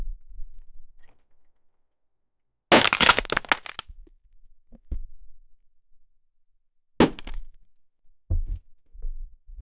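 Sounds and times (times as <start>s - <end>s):
wooden crate breaking: 2.7s - 3.8s.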